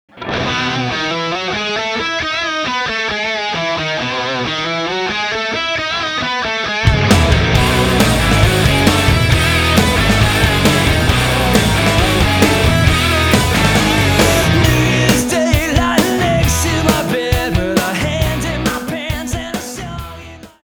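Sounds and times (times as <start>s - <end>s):
hard rock electric guitar: 0.1s - 20.6s.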